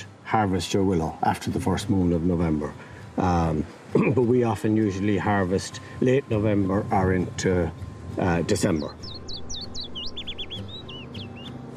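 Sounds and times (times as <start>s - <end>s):
speech: 0.3s - 9.2s
birds chirping and singing: 4.7s - 11.7s.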